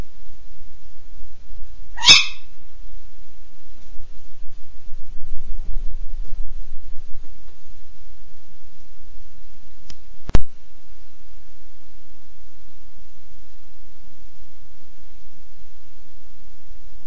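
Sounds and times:
low background rumble: 0.0 - 17.0
tawny owl territorial bark: 1.9 - 2.6.

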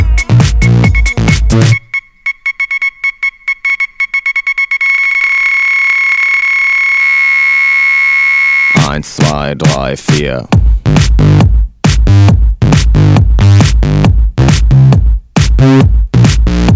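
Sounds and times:
song music: 0.0 - 4.9, 8.7 - 16.7
Morse code tone beeping inside a song: 0.3 - 10.2
speech: 9.3 - 10.7, 15.6 - 15.9.

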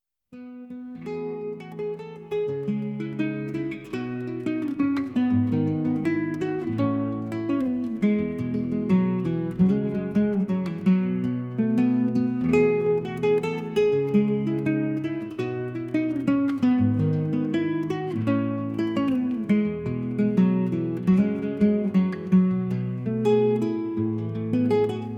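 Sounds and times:
relaxing soft guitar melody: 0.3 - 25.1.

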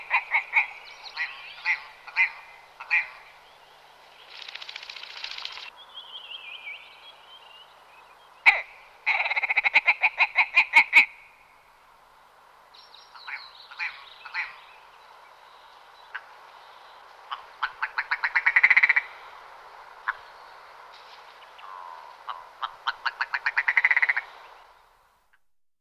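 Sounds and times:
willow ptarmigan giving hoarse notes and rattling series: 0.0 - 3.4, 8.4 - 11.4, 13.1 - 14.8, 16.1 - 19.4, 20.0 - 20.6, 21.4 - 24.6.

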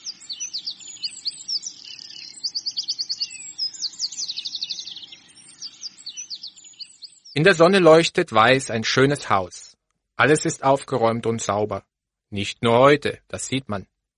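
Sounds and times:
several birds singing morning chorus of trills and tweets: 0.0 - 8.2
speech: 7.4 - 9.6, 10.2 - 13.9.

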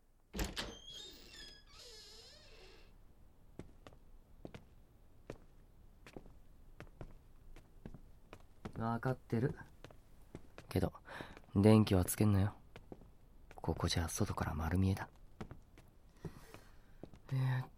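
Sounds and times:
door being opened with a wavering creak: 0.4 - 3.0
speech: 8.8 - 9.7, 10.8 - 11.0, 11.6 - 12.6, 13.6 - 15.2.

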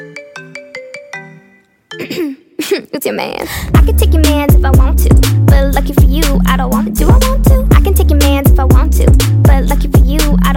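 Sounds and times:
mobile phone ringtone electronic melody: 0.0 - 2.0
speech: 2.0 - 10.5.

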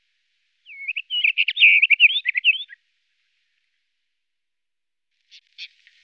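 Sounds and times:
White-crowned wheatear song: 0.7 - 2.8.

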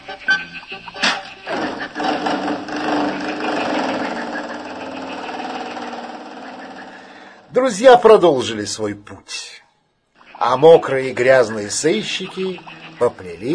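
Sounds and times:
clunks: 1.0 - 7.3
car engine turning over and running as the car pulls away: 1.5 - 7.5
speech: 7.6 - 9.5, 10.4 - 13.5.

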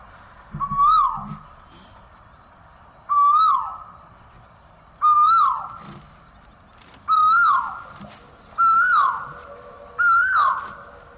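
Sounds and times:
cuckoo calling in Vrindavan: 0.5 - 1.6, 3.1 - 4.0, 5.0 - 6.2, 6.8 - 11.1.

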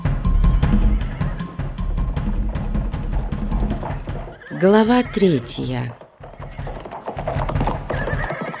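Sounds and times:
horse hooves clopping: 0.1 - 8.5
horse whinnying: 4.2 - 8.5
speech: 4.6 - 6.0.

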